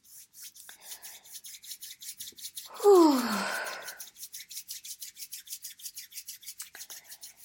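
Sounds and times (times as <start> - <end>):
two hands rubbing briskly together: 0.0 - 7.4.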